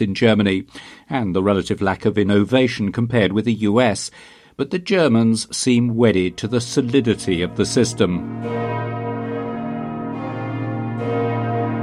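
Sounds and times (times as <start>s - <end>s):
speech: 0.0s - 9.0s
church bells ringing: 6.1s - 11.8s.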